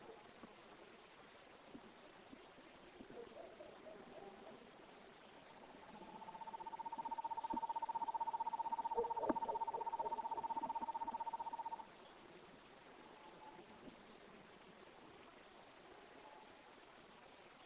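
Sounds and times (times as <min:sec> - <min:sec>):
Otus asio naevius screech owl call: 0:05.8 - 0:11.8.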